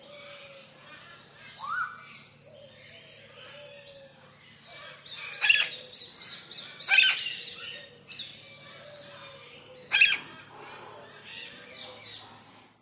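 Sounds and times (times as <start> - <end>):
doves and other soft bird calls: 0.0 - 12.8
parrots chattering in a large tropical aviary: 4.8 - 12.5
lilac-crowned amazon parrot squawking in a large tropical aviary: 6.9 - 7.2, 9.9 - 10.4.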